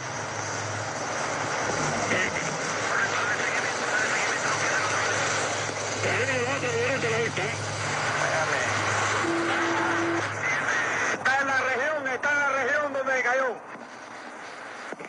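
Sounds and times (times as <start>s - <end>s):
small propeller plane engine droning: 0.0s - 15.0s
indistinct voices: 2.0s - 12.3s.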